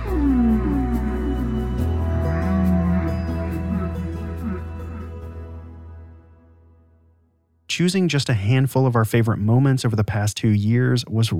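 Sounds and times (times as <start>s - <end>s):
whale calls in the ocean: 0.0s - 5.7s
speech: 7.8s - 11.3s.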